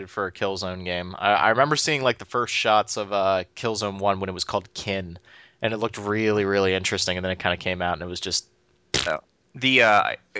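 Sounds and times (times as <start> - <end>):
speech: 0.0 - 10.3
fart noises made with the mouth: 8.9 - 9.3.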